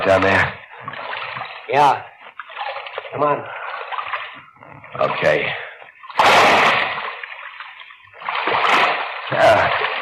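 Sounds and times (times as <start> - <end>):
speech: 0.0 - 0.6, 1.7 - 2.1, 3.1 - 3.6, 4.9 - 5.6
churning, sloshing water: 0.0 - 10.0
heavy splash of a person dropping into waist-deep water: 6.2 - 7.3, 8.2 - 10.0.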